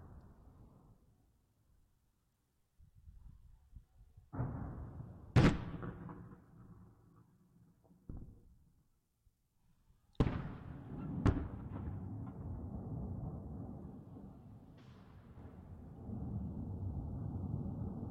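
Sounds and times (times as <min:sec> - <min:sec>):
explosions booming in a war zone: 0:04.3 - 0:06.3, 0:10.2 - 0:18.1.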